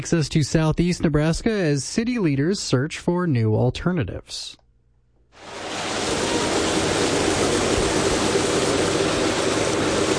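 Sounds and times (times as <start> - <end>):
speech: 0.0 - 4.6
muddy creek water rushing on a spring morning in Nebraska: 5.4 - 10.1.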